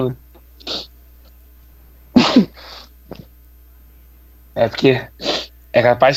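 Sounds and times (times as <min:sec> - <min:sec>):
speech: 0:00.0 - 0:00.7, 0:02.4 - 0:02.7, 0:04.6 - 0:05.2, 0:05.8 - 0:06.1
sharp sneeze: 0:02.2 - 0:03.3
breathy exhale: 0:05.2 - 0:05.6.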